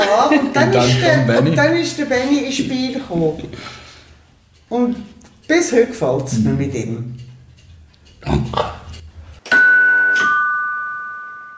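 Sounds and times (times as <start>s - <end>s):
laughter: 0.0s - 2.0s
speech: 0.1s - 3.8s, 4.7s - 7.2s, 8.2s - 8.8s
two-tone doorbell chime: 9.5s - 11.5s.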